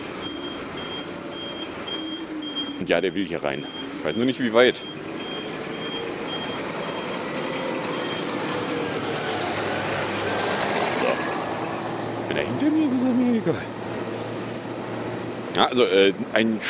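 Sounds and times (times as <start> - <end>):
street traffic: 0.0 - 16.6
garbage truck reversing alarm beeps: 0.2 - 8.4
speech: 2.8 - 5.1, 12.6 - 13.8, 15.6 - 16.6.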